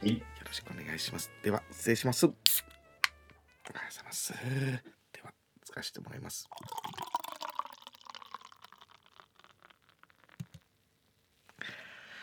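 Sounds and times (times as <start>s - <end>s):
speech: 0.0s - 2.7s, 3.7s - 7.0s
Yebisu beer glugging and fizzing as poured into a glass in a shop: 6.4s - 10.6s
glass clink: 6.5s - 8.9s.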